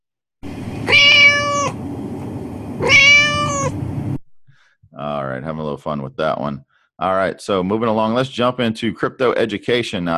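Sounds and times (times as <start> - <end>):
low hum: 0.4 - 4.2
cat meowing: 0.8 - 1.8, 2.8 - 3.8
speech: 5.0 - 10.1.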